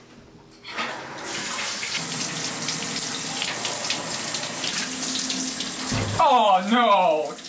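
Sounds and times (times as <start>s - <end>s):
shower water running: 0.8s - 7.4s
speech: 6.2s - 7.4s.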